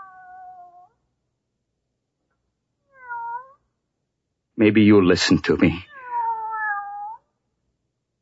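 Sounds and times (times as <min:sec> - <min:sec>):
cat meowing: 0:00.0 - 0:01.0, 0:02.9 - 0:03.6, 0:05.8 - 0:07.3
speech: 0:04.6 - 0:05.9.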